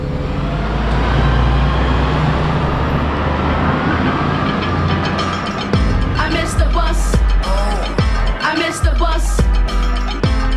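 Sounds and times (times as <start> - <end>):
city bus interior rumble while riding: 0.0 - 8.4
deep city bus engine drone: 0.0 - 10.4
road noise: 0.0 - 10.4.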